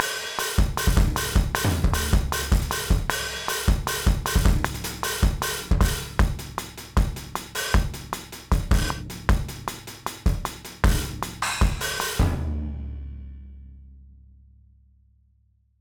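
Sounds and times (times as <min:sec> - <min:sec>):
garage rock muted snare drum: 0:00.0 - 0:12.5.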